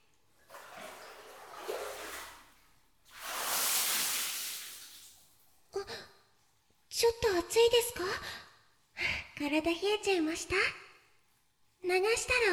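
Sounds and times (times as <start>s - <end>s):
water poured to rinse soap foam off a body in a bath: 0.5s - 5.4s
speech: 7.0s - 8.4s, 9.4s - 10.8s, 11.8s - 12.5s.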